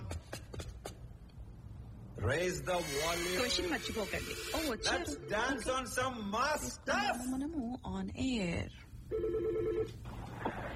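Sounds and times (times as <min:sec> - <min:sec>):
speech: 0:02.2 - 0:10.6
telephone ringing with an incoming call during a radio phone-in: 0:04.4 - 0:05.6, 0:09.1 - 0:10.0.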